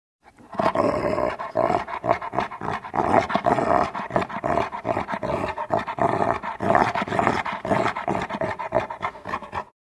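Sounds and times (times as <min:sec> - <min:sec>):
St Bernard dog panting: 0:00.3 - 0:09.8.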